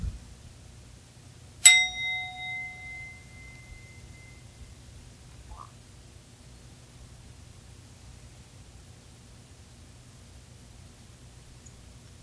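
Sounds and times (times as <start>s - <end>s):
single bell struck: 1.6s - 4.4s.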